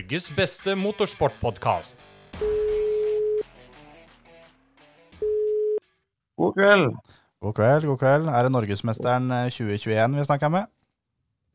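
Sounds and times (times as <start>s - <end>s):
speech: 0.1s - 2.8s, 6.4s - 10.8s
telephone ringback tone from an outgoing call: 2.4s - 3.4s, 5.2s - 5.8s.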